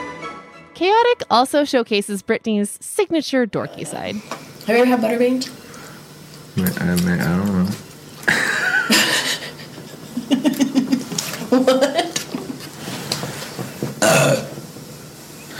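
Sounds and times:
speech: 0:00.8 - 0:05.6, 0:06.6 - 0:09.2, 0:11.5 - 0:12.1
laughter: 0:08.3 - 0:12.6
loud burps and gurgling belch: 0:14.0 - 0:14.6.

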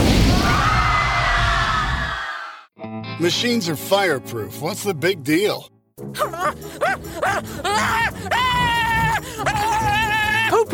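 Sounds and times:
loud booming explosion with roar of debris: 0:00.0 - 0:02.0
speech: 0:03.2 - 0:10.7.

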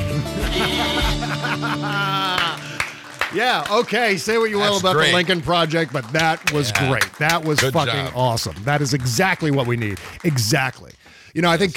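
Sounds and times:
laughter: 0:00.1 - 0:03.2, 0:04.4 - 0:08.2
several sheep bleating: 0:00.4 - 0:01.4
speech: 0:01.4 - 0:02.3, 0:03.3 - 0:11.7.

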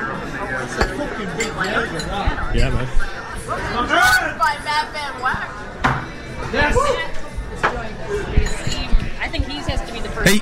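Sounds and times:
busy murmur of overlapping voices and chatter: 0:00.0 - 0:10.4
shot glasses clinking in a toast: 0:00.7 - 0:03.0, 0:08.4 - 0:09.1
speech: 0:01.4 - 0:05.7, 0:09.3 - 0:10.4.

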